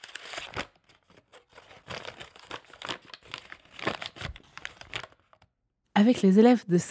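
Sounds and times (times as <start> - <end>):
crumpled paper ball from a school wastebasket being unfolded: 0.0 - 5.5
speech: 6.0 - 6.8.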